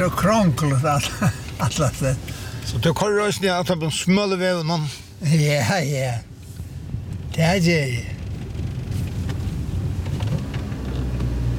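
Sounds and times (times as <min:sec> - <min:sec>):
steady rain pattering on a roof overhead: 0:00.0 - 0:04.2, 0:07.0 - 0:11.5
speech: 0:00.0 - 0:06.3, 0:07.4 - 0:08.2
deep low rumble: 0:08.0 - 0:11.5.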